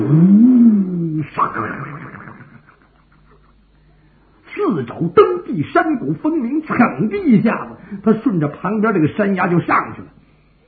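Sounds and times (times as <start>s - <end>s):
voice imitating a tiger's roar: 0.0s - 3.1s
speech: 4.6s - 10.2s.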